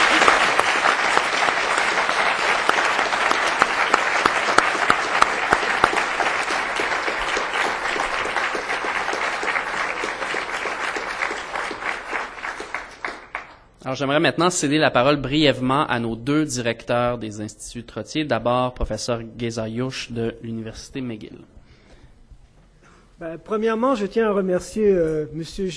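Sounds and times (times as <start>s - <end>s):
audience applause: 0.0s - 13.7s
speech: 13.9s - 21.6s, 23.2s - 25.7s.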